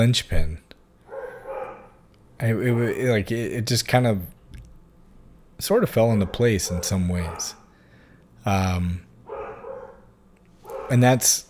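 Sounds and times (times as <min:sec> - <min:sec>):
speech: 0:00.0 - 0:00.6, 0:02.4 - 0:04.4, 0:05.6 - 0:07.6, 0:08.4 - 0:09.1, 0:10.9 - 0:11.4
faint steady hum: 0:00.0 - 0:11.4
pet dog barking: 0:01.1 - 0:02.0, 0:06.0 - 0:07.8, 0:09.2 - 0:11.4.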